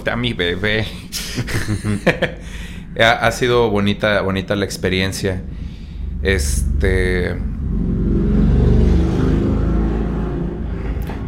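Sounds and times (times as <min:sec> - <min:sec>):
speech: 0:00.0 - 0:05.6, 0:06.2 - 0:07.9
laughter: 0:01.1 - 0:02.4
motorcycle engine passing by: 0:06.3 - 0:11.2.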